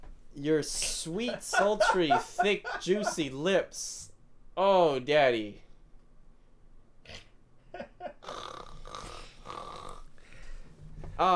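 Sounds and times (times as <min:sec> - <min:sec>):
speech: 0:00.4 - 0:05.6, 0:11.2 - 0:11.3
laughter: 0:01.1 - 0:03.3
person fake snoring through the nose and throat: 0:08.2 - 0:10.1.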